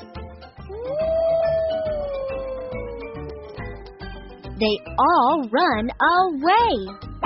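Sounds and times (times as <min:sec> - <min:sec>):
wolf howling: 0:00.7 - 0:03.9
speech: 0:04.6 - 0:07.1.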